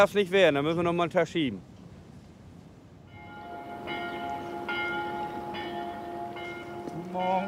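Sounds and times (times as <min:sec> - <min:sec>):
speech: 0:00.0 - 0:01.7, 0:07.2 - 0:07.4
church bell striking six o'clock in the morning: 0:03.1 - 0:07.4.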